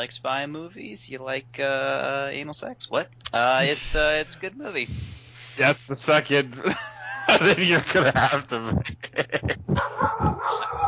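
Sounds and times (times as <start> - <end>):
speech: 0.0 - 10.8
laughter: 6.6 - 10.8
dogs barking and yipping: 9.8 - 10.8.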